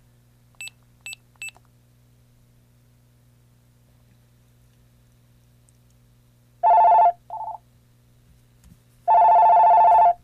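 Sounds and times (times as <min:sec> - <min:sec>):
electronic telephone ringing with an incoming call: 0:06.6 - 0:07.6, 0:09.1 - 0:10.2.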